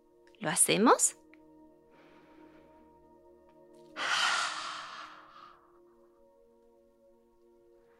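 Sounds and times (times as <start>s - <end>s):
speech: 0.4s - 1.2s
person's forceful breathy exhale imitating a lion's roar: 4.0s - 5.6s.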